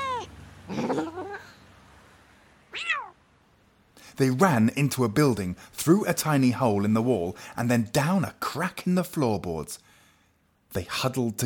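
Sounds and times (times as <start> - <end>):
cat meowing and yowling: 0.0 - 1.5, 2.7 - 3.2
speech: 4.2 - 9.9, 10.7 - 11.4.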